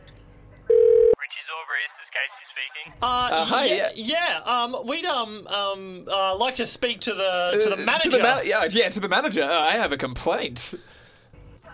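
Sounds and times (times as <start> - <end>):
telephone ringback tone: 0.7 - 1.2
speech: 1.6 - 11.0.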